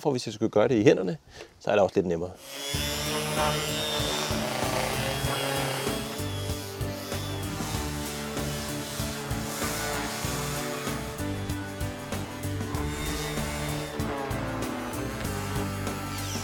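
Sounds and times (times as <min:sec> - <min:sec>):
speech: 0:00.0 - 0:04.4
orbital sander sanding a wooden table: 0:02.4 - 0:16.4.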